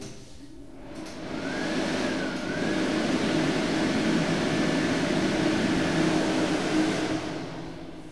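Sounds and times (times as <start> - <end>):
hand dryer blowing with a motorized whoosh and faint whine: 0.8 - 8.0.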